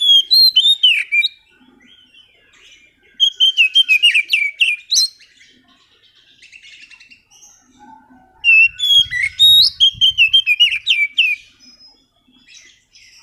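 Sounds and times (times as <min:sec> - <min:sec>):
Oriental magpie-robin master song used as a lure: 0:00.0 - 0:13.2.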